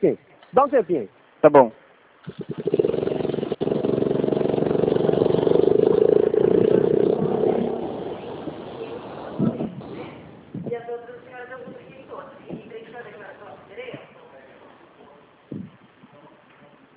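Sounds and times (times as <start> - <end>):
speech: 0.0 - 2.5
motor vehicle engine passing down the street: 2.3 - 10.4.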